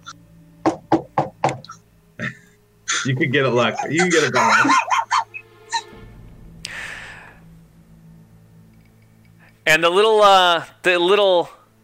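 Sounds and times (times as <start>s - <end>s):
knocks on wood: 0.6s - 1.7s
laughter: 2.9s - 5.8s
speech: 3.1s - 4.9s, 9.7s - 11.6s.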